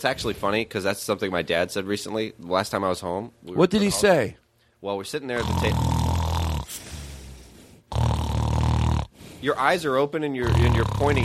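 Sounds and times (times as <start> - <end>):
speech: 0.0 - 5.9, 9.4 - 11.2
person snoring loudly: 5.4 - 9.4, 10.4 - 11.2.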